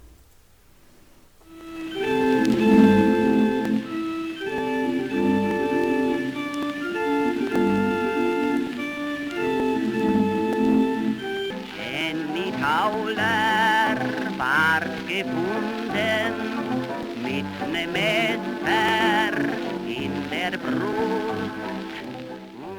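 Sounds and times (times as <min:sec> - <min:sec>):
instrumental accompaniment on an old thin-sounding recording: 0:01.4 - 0:22.7
voice singing with vibrato on an old recording: 0:11.0 - 0:22.7.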